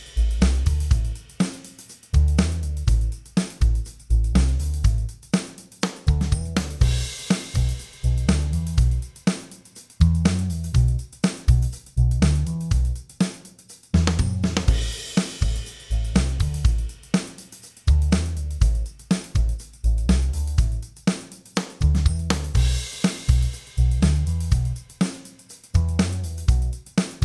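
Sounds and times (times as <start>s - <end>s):
electric bass: 0.2s - 1.2s, 2.2s - 5.1s, 6.1s - 9.1s, 10.0s - 13.0s, 14.0s - 16.9s, 17.9s - 20.9s, 21.8s - 24.8s, 25.8s - 27.2s.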